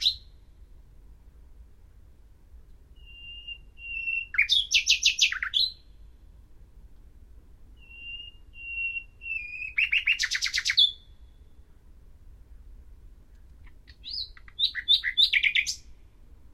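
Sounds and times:
common nightingale Luscinia megarhynchos song of piping whistles and chatter: 0.0 - 0.3, 3.0 - 6.0, 7.8 - 11.6, 13.6 - 16.0.

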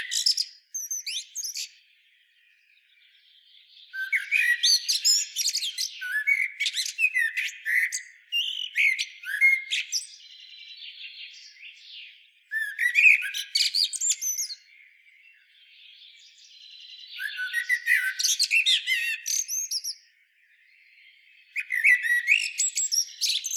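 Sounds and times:
Common blackbird singing: 0.0 - 23.5.

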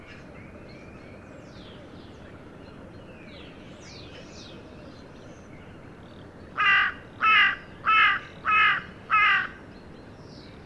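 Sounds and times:
Carrion crow Corvus corone cawing: 6.6 - 9.6.

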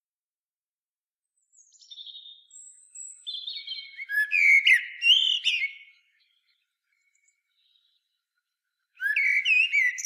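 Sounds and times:
Common blackbird Turdus merula singing: 1.6 - 6.5, 9.0 - 10.0.

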